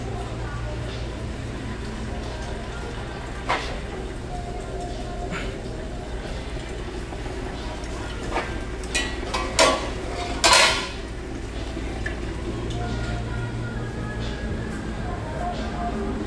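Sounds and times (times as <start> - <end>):
faint voices: 0.0 - 16.2
plates and pans clattering: 8.3 - 11.1.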